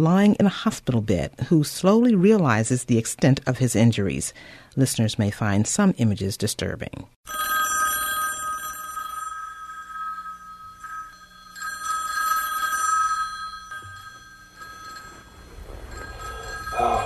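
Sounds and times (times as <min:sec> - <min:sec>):
speech: 0:00.0 - 0:07.6
telephone bell ringing: 0:07.2 - 0:17.0.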